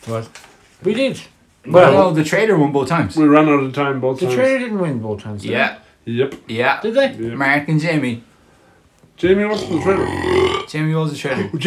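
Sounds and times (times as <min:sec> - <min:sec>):
speech: 0:00.0 - 0:08.3, 0:09.2 - 0:11.6
loud drawn-out throaty burp: 0:09.5 - 0:10.8.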